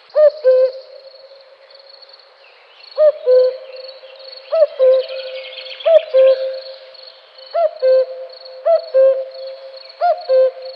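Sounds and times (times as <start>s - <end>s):
thin steady high-pitched hiss: 0.0s - 10.7s
cuckoo calling two-note cu-ckoo: 0.1s - 1.1s, 3.0s - 6.9s, 7.5s - 10.7s.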